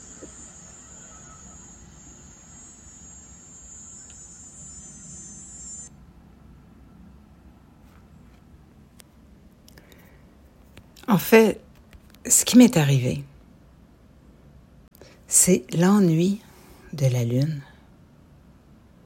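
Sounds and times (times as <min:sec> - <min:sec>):
cicadas buzzing: 0:00.0 - 0:05.9
lawnmower engine droning: 0:00.0 - 0:05.9
speech: 0:11.1 - 0:11.6, 0:12.2 - 0:13.3, 0:15.4 - 0:17.7.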